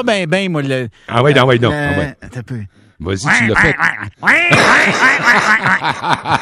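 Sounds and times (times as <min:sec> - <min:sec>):
speech: 0:00.0 - 0:06.4
voice imitating a duck hunting call with nasal honking quacks: 0:03.2 - 0:05.2
laughter: 0:03.3 - 0:06.4.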